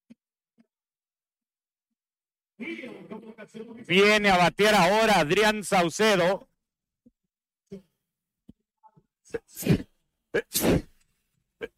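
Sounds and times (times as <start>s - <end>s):
speech: 2.6s - 6.5s, 9.3s - 10.9s
person sneezing: 9.4s - 11.0s.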